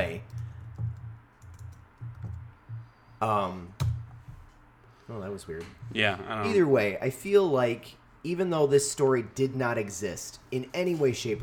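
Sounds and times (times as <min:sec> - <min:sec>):
soft scattered keyboard typing: 0:00.0 - 0:03.0
speech: 0:03.2 - 0:03.8, 0:05.1 - 0:11.4.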